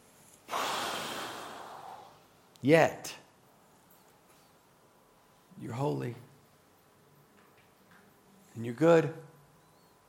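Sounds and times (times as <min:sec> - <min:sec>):
deep breath: 0:00.5 - 0:02.3
speech: 0:02.6 - 0:03.2, 0:05.6 - 0:06.2, 0:08.6 - 0:09.3.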